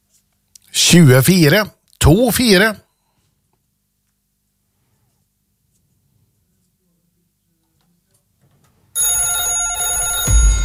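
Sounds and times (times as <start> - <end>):
speech: 0.8 - 2.8
call-in telephone ringing with a bright electronic trill during a radio bingo broadcast: 9.0 - 10.6.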